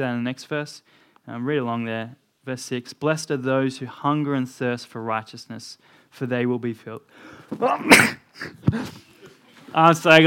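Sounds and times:
speech: 0.0 - 9.1, 9.7 - 10.2
person sneezing: 7.5 - 9.1.

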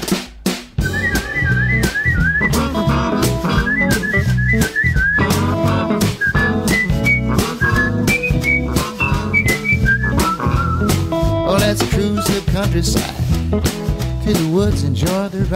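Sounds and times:
rhythmic strums: 0.0 - 15.5
thumping beats: 0.0 - 15.5
street busker whistling a bright wavering melody: 0.8 - 12.5
speech: 14.7 - 15.5.

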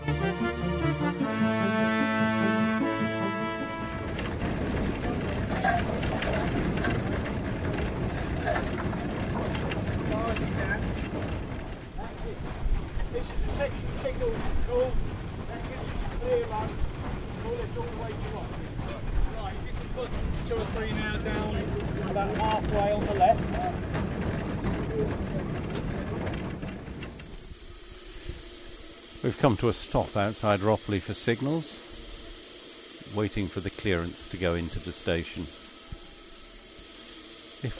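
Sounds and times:
steam locomotive working hard uphill, heard from the cab: 0.1 - 37.7
wind: 1.7 - 37.7
rattling in a steam locomotive cab: 3.8 - 27.6
speech: 29.3 - 31.9, 33.2 - 35.6.

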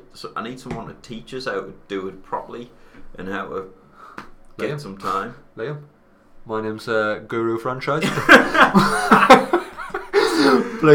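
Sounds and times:
speech: 0.1 - 9.4, 10.8 - 10.9
laughter: 8.0 - 10.9
person coughing into hand: 10.1 - 10.8.

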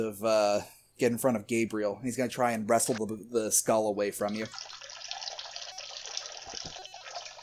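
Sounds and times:
speech: 0.0 - 4.8
water pouring over ice cubes, splashing and gurgling: 4.2 - 7.4.

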